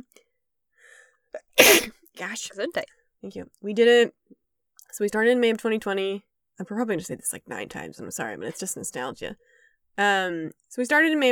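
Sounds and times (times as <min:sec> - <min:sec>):
speech: 0:01.3 - 0:04.2, 0:04.9 - 0:11.2
sneeze: 0:01.6 - 0:01.9.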